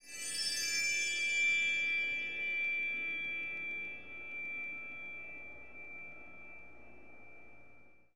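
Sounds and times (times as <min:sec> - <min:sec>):
bell tree: 0:00.0 - 0:08.1.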